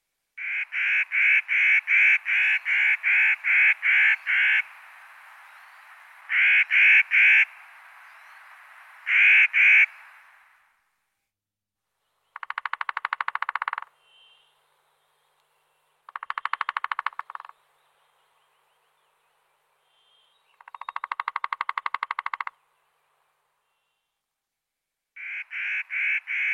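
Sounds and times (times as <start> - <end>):
Three-toed woodpecker drumming: 0.4 - 10.1, 12.3 - 13.9, 16.0 - 17.7, 20.5 - 22.6
three-toed woodpecker harsh calls: 0.4 - 10.2, 12.2 - 14.6, 16.0 - 17.7, 20.0 - 22.8, 25.2 - 26.5.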